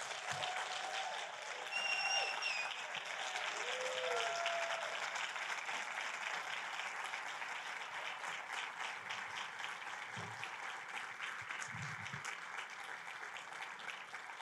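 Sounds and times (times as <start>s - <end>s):
scattered cheers: 0.0s - 5.4s
crowd clapping: 0.0s - 14.3s
high whistle: 1.7s - 2.8s.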